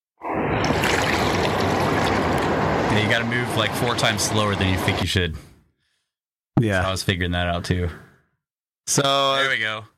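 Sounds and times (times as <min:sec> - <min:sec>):
water trickling and splashing: 0:00.6 - 0:03.1
speech: 0:03.0 - 0:05.5, 0:06.6 - 0:08.1, 0:08.8 - 0:09.9.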